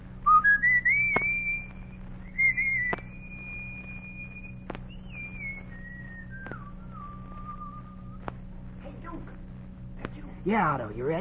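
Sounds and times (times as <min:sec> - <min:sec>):
steady low hum: 0:00.0 - 0:11.1
boy whistling a slow tune on a hot summer evening: 0:00.2 - 0:08.2
faint taps: 0:04.6 - 0:04.9, 0:08.2 - 0:08.5
speech: 0:10.5 - 0:11.1.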